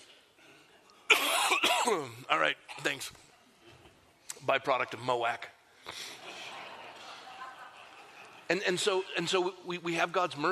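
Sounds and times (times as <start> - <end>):
loud harsh cough: 1.1 - 2.2
speech: 1.8 - 3.3, 4.4 - 6.2, 8.5 - 10.5
laughter: 5.9 - 9.1.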